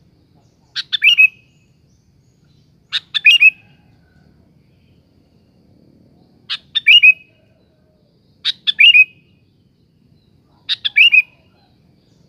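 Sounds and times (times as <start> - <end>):
sooty-headed bulbul song of bubbly phrases with whistled tail: 0.6 - 1.9, 6.5 - 7.4, 8.4 - 9.4, 10.7 - 11.4.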